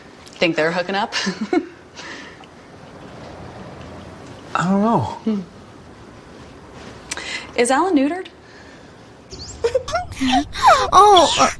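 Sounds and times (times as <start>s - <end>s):
speech: 0.4s - 1.8s, 4.6s - 5.6s, 7.6s - 8.3s, 10.2s - 11.5s
person wailing and sobbing: 9.6s - 11.5s.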